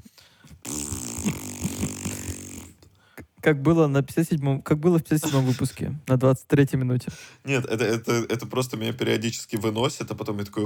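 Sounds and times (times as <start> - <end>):
buzzy fart noise blown into a microphone: 0.5 - 2.9
speech: 3.4 - 10.6.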